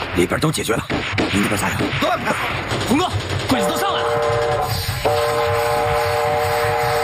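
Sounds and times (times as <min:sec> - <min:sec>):
speech: 0:00.1 - 0:05.6
train horn blast: 0:04.0 - 0:07.0.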